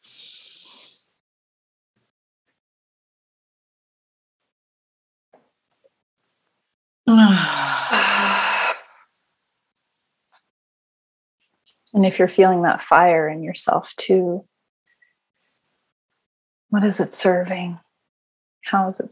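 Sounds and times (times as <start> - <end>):
breathy hiss: 0.0 - 1.1
speech: 7.1 - 8.1, 11.9 - 14.5, 16.7 - 17.8, 18.7 - 19.0
long loud voiced exhale after a breath hold in pranayama breathwork: 7.1 - 8.9.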